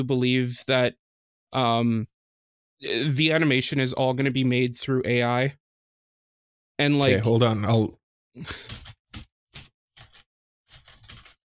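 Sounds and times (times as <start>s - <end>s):
speech: 0.0s - 2.1s, 2.8s - 5.6s, 6.8s - 8.8s
keyboard typing: 8.5s - 11.4s.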